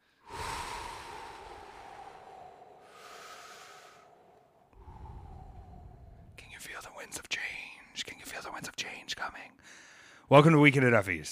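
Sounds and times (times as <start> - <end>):
faint long deep breaths: 0.0 - 7.9, 9.6 - 10.3
speech: 10.3 - 11.3.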